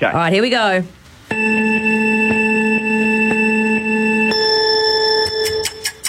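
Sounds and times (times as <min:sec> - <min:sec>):
speech: 0:00.0 - 0:01.6
electronic countdown with buzzy tone and ticking pulses: 0:01.3 - 0:06.0.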